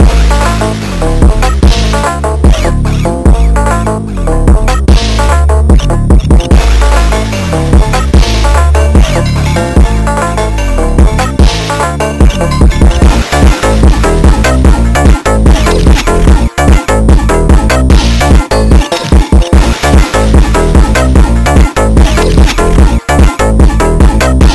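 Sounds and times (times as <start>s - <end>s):
sped-up funk bass: 0.0s - 24.5s.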